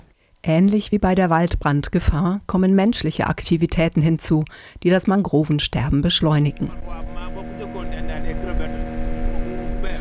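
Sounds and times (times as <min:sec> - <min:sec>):
speech: 0:00.4 - 0:07.3
boat motor droning beside a bare mudflat in the tidal shallows: 0:06.4 - 0:10.0.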